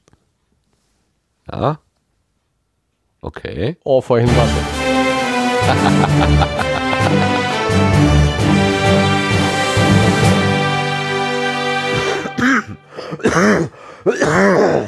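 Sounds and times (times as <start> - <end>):
speech: 1.5 - 1.8, 3.2 - 4.8, 5.6 - 7.3, 13.3 - 14.8
steady tonal music: 4.3 - 13.6
laughter: 5.5 - 9.1
rough coughs: 11.9 - 14.8
loud throat clearing: 12.3 - 14.8.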